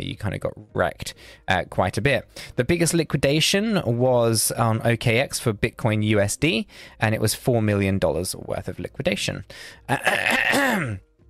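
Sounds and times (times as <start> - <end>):
speech: 0.0 - 11.1
rough gravelly throat clearing: 9.9 - 11.0.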